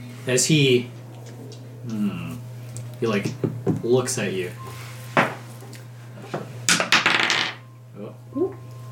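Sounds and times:
speech: 0.2s - 1.0s, 1.8s - 2.3s, 3.0s - 4.7s
dice rolling on a hard table: 6.7s - 7.6s.

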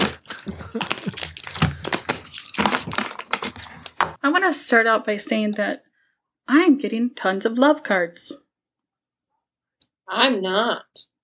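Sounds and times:
deck of playing cards being shuffled: 0.0s - 4.2s
speech: 0.5s - 1.0s, 4.3s - 5.9s, 6.5s - 8.4s, 10.1s - 11.1s.

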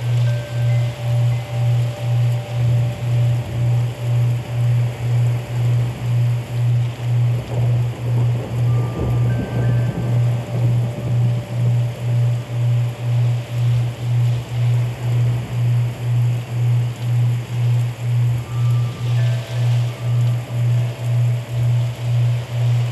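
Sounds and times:
wind chimes: 0.0s - 6.4s, 7.6s - 14.0s, 18.4s - 22.8s
rain: 0.0s - 22.8s.

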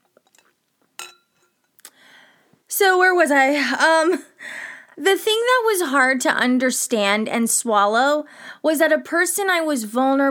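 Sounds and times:
glasses clinking together in a toast: 0.2s - 1.7s
speech: 2.7s - 10.2s.

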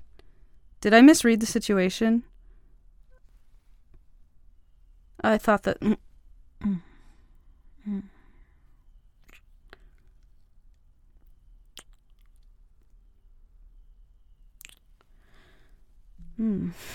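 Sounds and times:
quiet breathing: 0.0s - 0.8s, 2.3s - 3.9s, 6.6s - 10.2s, 15.0s - 16.9s
speech: 0.8s - 2.3s, 5.2s - 6.9s, 7.9s - 8.1s, 16.4s - 16.9s
soft wet kissing sounds: 9.2s - 9.9s, 11.8s - 12.2s, 14.6s - 14.8s.

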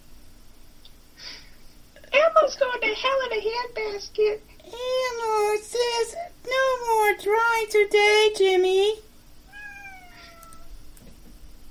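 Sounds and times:
steady low hum: 0.0s - 11.6s
speech: 3.0s - 9.1s
drawn-out cat meow: 9.5s - 10.7s.

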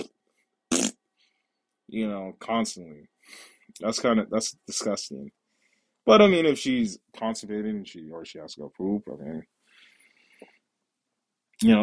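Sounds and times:
raspberry made with the mouth imitating a fart: 0.7s - 1.0s
speech: 1.9s - 5.4s, 6.0s - 9.6s, 11.6s - 11.8s.

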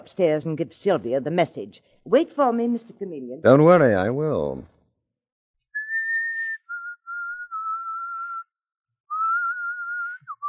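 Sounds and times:
speech: 0.0s - 4.7s
person whistling a simple tune: 5.8s - 8.5s, 9.1s - 10.4s.

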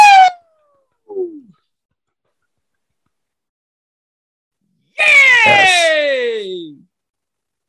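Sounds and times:
goofy cartoonish scream sound effect: 0.0s - 0.5s, 5.0s - 6.4s.

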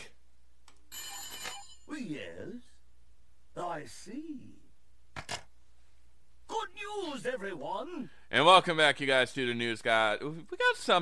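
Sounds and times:
telephone ringing with an electronic trill: 0.9s - 1.9s
speech: 2.0s - 2.7s, 3.6s - 4.6s, 7.0s - 11.0s.

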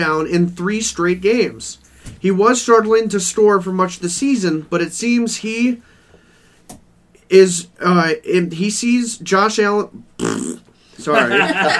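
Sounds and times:
speech: 0.0s - 5.9s, 7.3s - 11.7s
loud buzzy fart noises: 10.0s - 10.8s
laughter: 11.0s - 11.7s.

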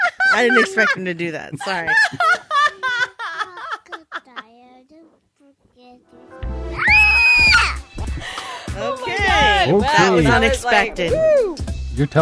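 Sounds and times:
laughter: 0.0s - 4.4s, 8.2s - 11.4s
speech: 0.4s - 2.5s, 9.6s - 12.2s
loud piercing scream: 6.8s - 7.8s
high excited vocal bursts: 6.8s - 11.6s.

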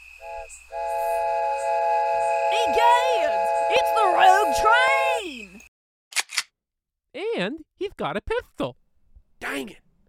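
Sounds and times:
voice mimicking an ominous evil train horn: 0.2s - 5.1s
speech: 0.5s - 0.8s, 2.6s - 3.2s, 7.4s - 8.8s, 9.5s - 9.8s.

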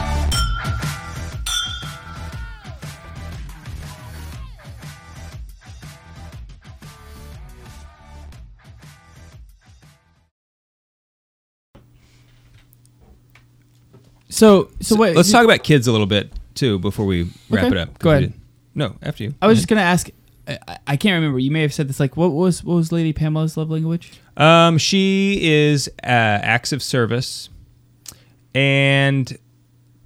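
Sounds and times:
glasses clinking together in a toast: 0.3s - 2.6s
speech: 14.4s - 27.6s, 28.5s - 29.4s.

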